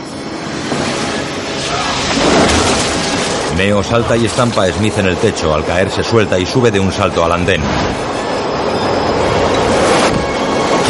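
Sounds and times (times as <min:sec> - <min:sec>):
subway train arriving at a platform: 0:00.0 - 0:10.8
speech: 0:03.6 - 0:08.2
high metallic wheel squeal of subway train: 0:08.1 - 0:10.8.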